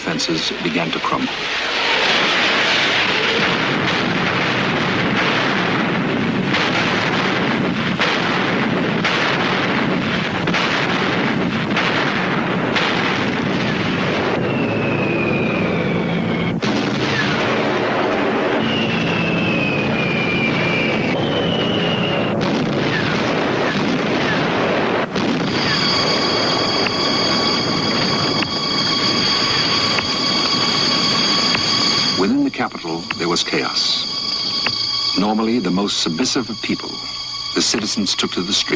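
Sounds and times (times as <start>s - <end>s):
constant rumble: 0.0s - 38.7s
speech: 0.1s - 2.1s, 35.4s - 37.0s, 37.6s - 38.7s
long-range artillery opening fire on Berlin: 1.6s - 38.7s
high whistling tones: 14.3s - 16.6s, 18.5s - 24.4s, 25.5s - 38.7s.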